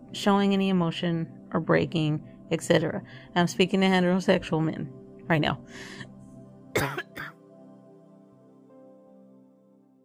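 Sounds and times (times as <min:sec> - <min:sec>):
speech: 0:00.2 - 0:06.1
person clearing throat from allergies: 0:06.8 - 0:07.4
person coughing from allergies: 0:06.8 - 0:07.4.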